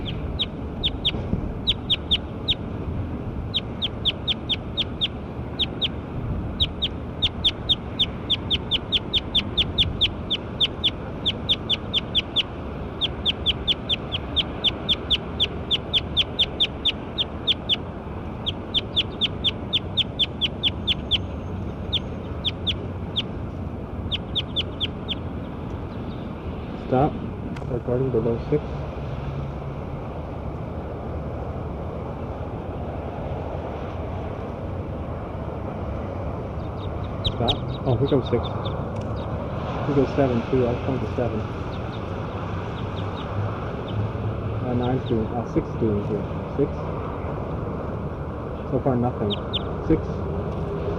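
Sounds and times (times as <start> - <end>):
bird calls: 0.0 - 2.6, 3.5 - 23.4, 24.0 - 26.3, 36.6 - 39.4, 48.5 - 49.8
constant low rumbling noise: 0.0 - 50.9
speech: 28.4 - 28.8, 38.1 - 38.8, 39.9 - 41.7, 45.1 - 46.8, 48.7 - 50.2.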